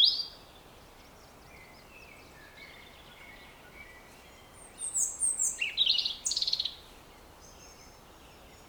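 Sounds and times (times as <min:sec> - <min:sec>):
European robin Erithacus rubecula song phrase: 0:01.6 - 0:06.8.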